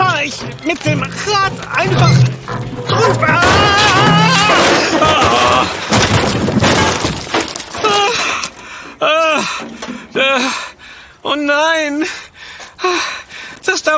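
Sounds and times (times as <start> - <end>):
wheelbarrow tipping over with a loud rattling crash: 0.0 - 8.6
speech: 0.3 - 4.1
short dismayed vocal gasps: 8.1 - 11.2, 12.1 - 13.6.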